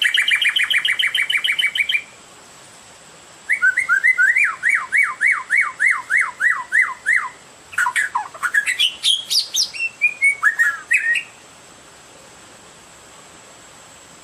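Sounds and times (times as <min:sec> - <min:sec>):
Oriental magpie-robin song: 0:00.0 - 0:02.2, 0:03.5 - 0:11.4.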